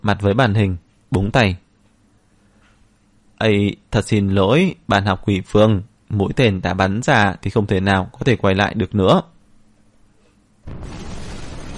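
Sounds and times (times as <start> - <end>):
speech: 0.0 - 1.6, 3.4 - 9.3, 10.6 - 11.1
powerful explosion with shock wave: 10.6 - 11.7.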